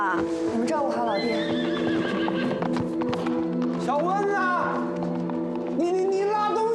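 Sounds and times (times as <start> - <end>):
horse hooves clip-clopping: 0.2 - 6.7
horse neighing: 1.1 - 2.8.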